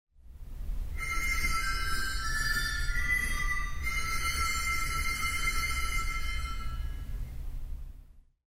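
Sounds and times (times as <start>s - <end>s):
sleigh bells: 0.9s - 7.2s
theatre organ: 1.0s - 7.1s.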